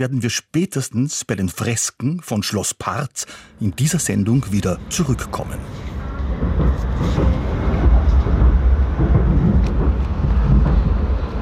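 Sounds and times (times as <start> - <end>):
speech: 0.0 - 7.4
Upper Austrian local train running through the Eferding Basin: 3.2 - 11.3.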